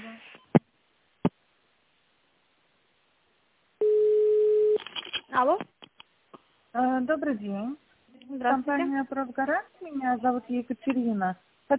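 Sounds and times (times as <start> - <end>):
steady telephone tone during call transfer: 3.8 - 4.8
speech: 5.4 - 5.8, 6.8 - 11.7.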